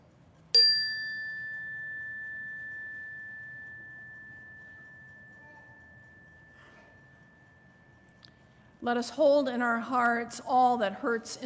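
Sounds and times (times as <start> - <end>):
chime struck and ringing: 0.6 - 8.6
speech: 8.8 - 11.4.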